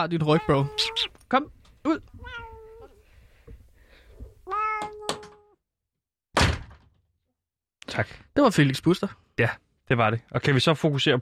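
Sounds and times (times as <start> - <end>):
speech: 0.0 - 2.4, 8.0 - 11.2
cat meowing: 0.3 - 1.2, 2.0 - 3.0, 4.4 - 5.6
loud thump: 6.4 - 7.0.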